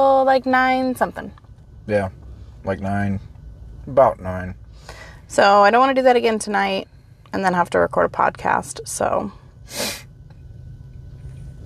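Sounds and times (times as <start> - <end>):
speech: 0.0 - 3.3, 3.9 - 10.0
steady low hum in a parked car: 0.0 - 11.6
loud sniff in a parked car: 9.7 - 10.1.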